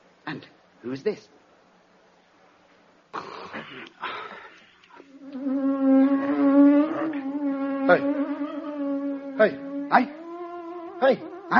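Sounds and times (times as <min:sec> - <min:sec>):
speech: 0:00.8 - 0:01.4, 0:03.1 - 0:04.4, 0:07.9 - 0:08.1, 0:09.4 - 0:10.1, 0:11.1 - 0:11.5
bee buzzing: 0:05.0 - 0:11.5.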